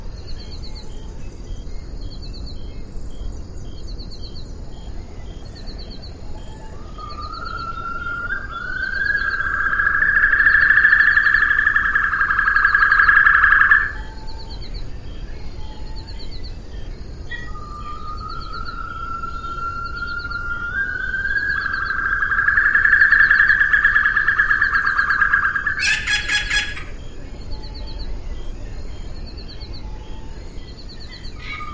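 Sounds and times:
faint twittering: 0:00.0 - 0:31.7
Assumption white-throated rail rising call: 0:06.4 - 0:14.6, 0:17.3 - 0:28.1.

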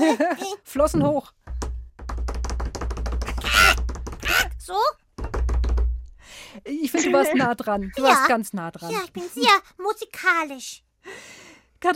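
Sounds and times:
laughter: 0:00.0 - 0:00.6, 0:06.8 - 0:08.1
speech: 0:00.0 - 0:01.4, 0:06.6 - 0:11.9
rhythm knocked back in imitation: 0:01.5 - 0:04.4, 0:05.1 - 0:06.2.

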